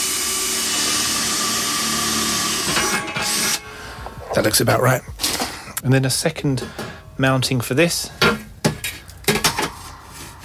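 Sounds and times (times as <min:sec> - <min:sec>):
power drill boring through the centre of a new dish: 0:00.0 - 0:03.7
speech: 0:04.4 - 0:08.4.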